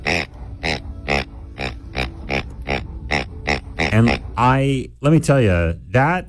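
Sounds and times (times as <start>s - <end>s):
pig-shaped dog toy snuffly oinking: 0.0s - 4.4s
speech: 3.9s - 6.2s.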